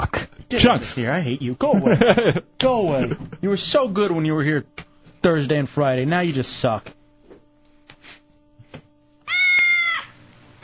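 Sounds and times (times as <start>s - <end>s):
low steady hum: 0.0s - 10.6s
speech: 0.5s - 7.0s
laughter: 1.7s - 3.6s
cat meowing: 9.3s - 10.6s.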